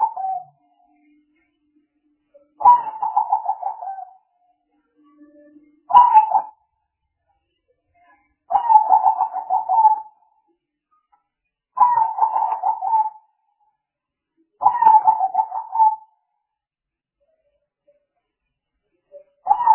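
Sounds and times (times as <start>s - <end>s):
spotted dove coos and rolling stuttering phrases used as a lure: 0.0s - 0.6s, 2.6s - 4.2s, 5.9s - 6.5s, 8.5s - 10.2s, 11.8s - 13.2s, 14.6s - 16.1s, 19.5s - 19.7s.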